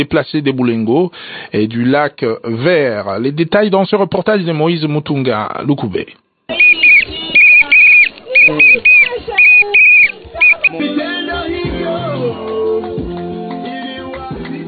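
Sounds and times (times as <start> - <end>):
speech: 0.0 - 6.2, 8.5 - 8.9
shrill whistles blown as alarm signal: 6.5 - 10.7
group of voices: 6.5 - 13.0.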